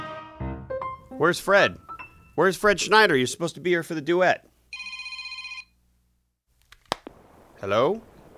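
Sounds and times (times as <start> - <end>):
speech: 1.2 - 4.5, 7.6 - 8.1
telephone ringing with electronic trill: 4.7 - 5.7.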